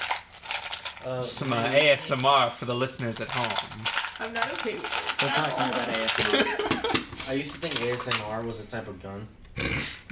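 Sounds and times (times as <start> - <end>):
rummaging through a dice case: 0.0 - 6.4, 7.0 - 8.4
speech: 1.0 - 9.9
laughter: 6.1 - 7.2.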